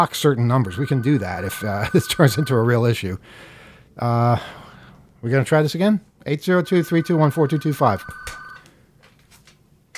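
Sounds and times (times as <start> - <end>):
speech: 0.0 - 4.6, 5.2 - 8.4
electronic telephone ringing: 0.4 - 3.0, 6.5 - 8.7.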